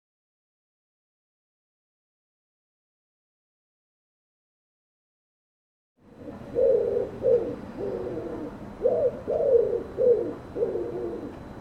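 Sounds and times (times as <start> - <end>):
bird giving low hoarse cooing notes: 6.0 - 11.5.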